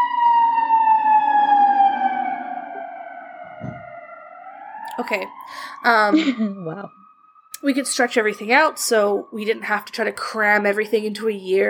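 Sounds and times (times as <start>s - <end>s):
ambulance siren wailing: 0.0s - 11.6s
low thump: 3.5s - 4.0s
speech: 5.0s - 7.0s, 7.6s - 11.6s.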